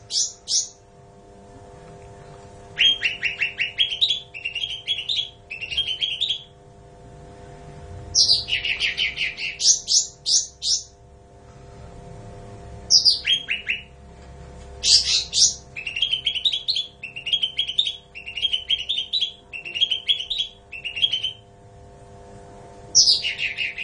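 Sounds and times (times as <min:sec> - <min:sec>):
bulbul singing: 0:00.0 - 0:00.9, 0:02.8 - 0:06.6, 0:08.1 - 0:11.0, 0:12.9 - 0:14.0, 0:14.8 - 0:21.5, 0:22.9 - 0:23.8
low background hum: 0:00.0 - 0:23.8.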